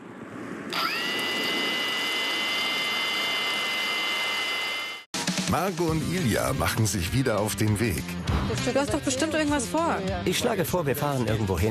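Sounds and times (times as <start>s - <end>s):
drone motors whining: 0.7s - 5.1s
speech: 5.5s - 11.6s.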